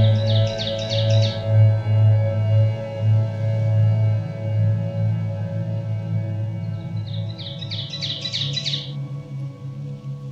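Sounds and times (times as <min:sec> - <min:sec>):
ovenbird song: 0:00.0 - 0:03.0, 0:05.7 - 0:10.3
constant low hum: 0:00.0 - 0:10.3.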